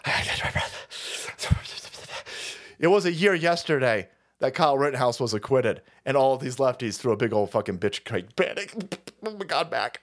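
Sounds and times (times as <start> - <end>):
man panting heavily while catching his breath: 0.0 - 2.8
speech: 2.8 - 10.0.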